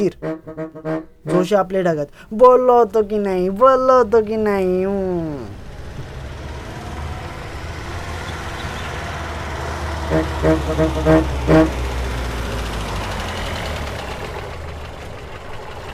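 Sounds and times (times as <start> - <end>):
short bright bus horn honks: 0.0 - 1.6, 8.2 - 12.5
speech: 0.0 - 5.6, 10.1 - 11.8
bus engine rumbling low at a gate: 0.0 - 15.9.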